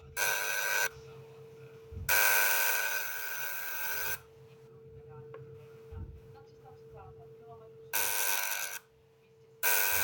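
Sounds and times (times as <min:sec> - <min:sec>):
Tesla coil vacuum tester firing in harsh buzzing bursts: 0:00.0 - 0:01.2, 0:02.0 - 0:04.4, 0:07.8 - 0:08.9, 0:09.6 - 0:10.0.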